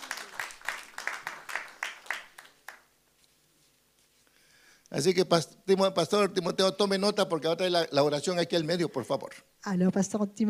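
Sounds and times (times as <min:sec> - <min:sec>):
group clapping together in a steady rhythm: 0:00.0 - 0:02.9
speech: 0:04.9 - 0:10.4.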